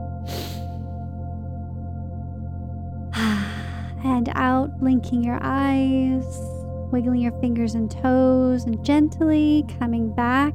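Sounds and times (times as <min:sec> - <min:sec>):
deep inhale at the close of a guided meditation: 0:00.3 - 0:00.8
speech: 0:04.2 - 0:10.5.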